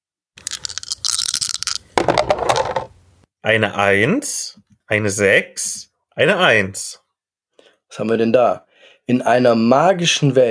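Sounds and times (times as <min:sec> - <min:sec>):
dice rattling: 0:00.4 - 0:02.9
dice tumbling across a hard surface: 0:02.0 - 0:03.0
speech: 0:03.4 - 0:07.0, 0:07.9 - 0:10.4.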